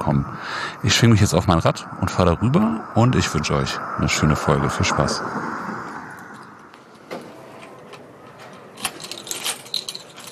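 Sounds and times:
speech: 0:00.0 - 0:05.5
bunch of keys jangling at library entrance: 0:08.4 - 0:10.2.

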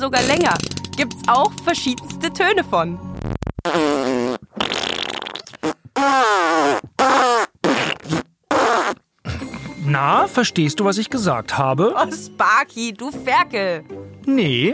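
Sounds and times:
speech: 0:00.0 - 0:03.8, 0:10.0 - 0:14.7
drawn-out fart noises wobbling in pitch: 0:00.2 - 0:00.8, 0:03.2 - 0:09.4.

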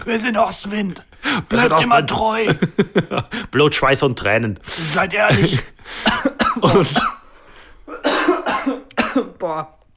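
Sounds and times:
speech: 0:00.0 - 0:07.2, 0:09.2 - 0:09.8
laughter: 0:01.5 - 0:03.5
harsh raspy coughs after straining the voice: 0:05.3 - 0:09.5.

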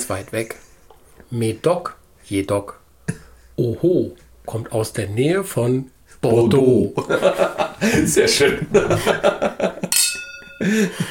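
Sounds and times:
speech: 0:00.1 - 0:02.8, 0:03.6 - 0:09.7, 0:10.6 - 0:11.0
laughter: 0:07.0 - 0:10.0
wine glasses clinking in a toast during a red wine tasting: 0:09.8 - 0:11.0.

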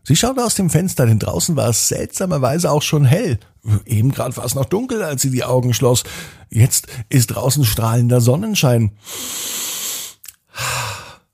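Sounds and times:
speech: 0:00.1 - 0:09.5
long deep breath drawn in: 0:06.1 - 0:07.0, 0:09.0 - 0:11.3
fuller audible exhale: 0:09.0 - 0:11.3.

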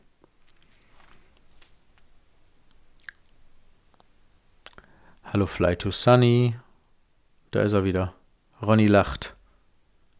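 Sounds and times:
wet lip smacks and sticky mouth clicks against the microphone: 0:02.6 - 0:04.9
speech: 0:05.3 - 0:06.6, 0:07.5 - 0:09.4.

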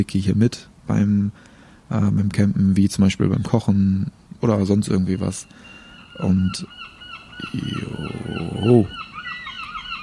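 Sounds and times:
speech: 0:00.0 - 0:09.1
seagulls calling at a campsite: 0:04.4 - 0:10.0.

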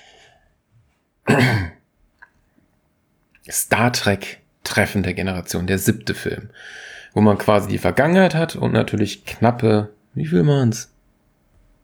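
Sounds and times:
short rough cough: 0:01.3 - 0:01.8
speech: 0:01.4 - 0:01.7, 0:03.5 - 0:10.9.

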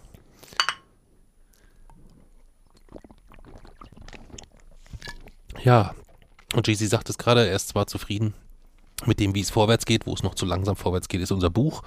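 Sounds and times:
glasses clinking in a toast: 0:00.6 - 0:00.8
speech: 0:05.6 - 0:06.0, 0:06.6 - 0:08.4, 0:09.0 - 0:11.8.

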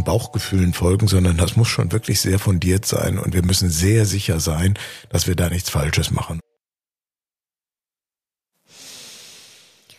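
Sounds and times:
speech: 0:00.0 - 0:06.5
single long airy breath: 0:08.7 - 0:09.9.

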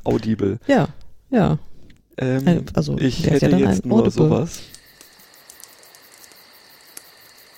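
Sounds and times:
speech: 0:00.0 - 0:04.8
fire crackling: 0:03.2 - 0:07.5.

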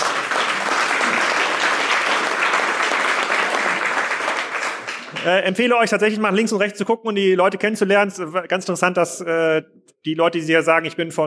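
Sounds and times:
applause from a large audience: 0:00.0 - 0:05.6
speech: 0:05.2 - 0:11.2.

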